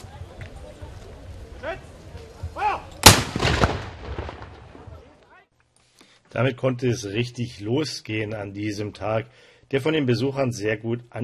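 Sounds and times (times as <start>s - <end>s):
military pioneer battalion firing a gun salute: 3.0s - 4.6s
speech: 6.4s - 11.2s.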